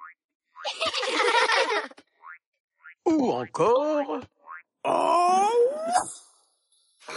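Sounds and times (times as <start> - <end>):
laughter: 0.7 - 2.0
speech: 0.8 - 2.0, 3.1 - 6.2
cartoon ball bouncing boing sound effect: 2.2 - 4.7.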